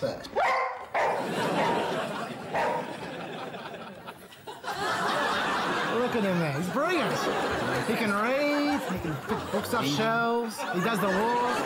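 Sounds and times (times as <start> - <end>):
speech: 0.0 - 0.5, 6.2 - 11.6
dog barking: 0.4 - 1.9, 2.5 - 2.9
laughter: 1.1 - 11.6.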